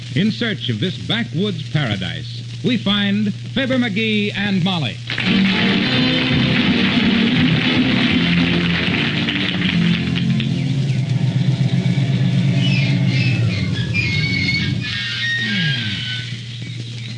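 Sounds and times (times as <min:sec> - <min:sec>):
speech: 0:00.2 - 0:06.3
car engine rumbling while driving along a forest road: 0:06.4 - 0:15.0
worn faulty car brakes squealing: 0:10.4 - 0:16.5.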